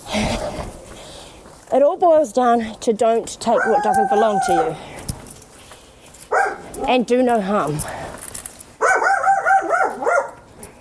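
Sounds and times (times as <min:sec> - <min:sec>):
speech: 0:01.7 - 0:05.0, 0:06.9 - 0:08.0
dog barking in yelping barks: 0:03.6 - 0:04.5, 0:06.3 - 0:06.9, 0:08.8 - 0:10.4.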